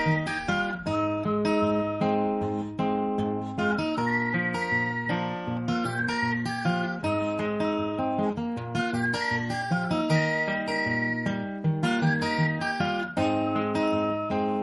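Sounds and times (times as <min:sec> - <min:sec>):
whistled rendition of a rock song: 0:00.0 - 0:14.6.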